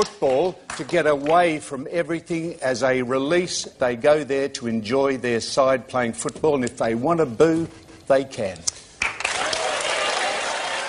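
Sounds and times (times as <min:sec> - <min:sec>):
speech: 0:00.0 - 0:08.8
studio audience applauding: 0:09.0 - 0:10.8
studio audience cheering: 0:09.2 - 0:10.8.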